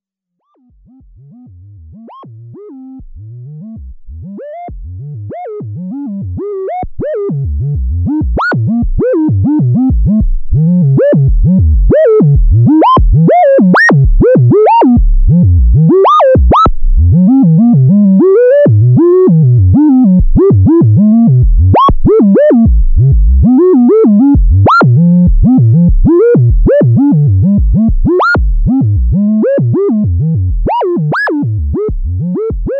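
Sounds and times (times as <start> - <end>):
analog synth sample and hold sine with portamento: 0.5 - 32.7.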